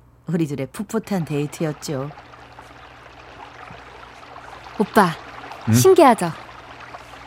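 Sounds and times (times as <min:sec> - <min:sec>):
speech: 0:00.3 - 0:02.3, 0:04.8 - 0:06.4
babbling stream flowing at night: 0:01.0 - 0:07.2.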